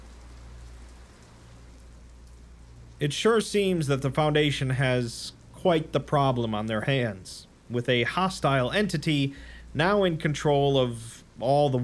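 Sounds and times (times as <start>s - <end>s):
rain falling in a soft even hiss of raindrops: 0.0s - 11.8s
speech: 3.0s - 11.8s.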